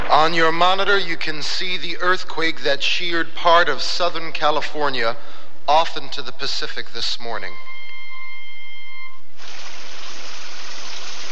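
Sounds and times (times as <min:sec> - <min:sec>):
speech: 0:00.2 - 0:07.7
heavy monsoon rain: 0:09.4 - 0:11.3.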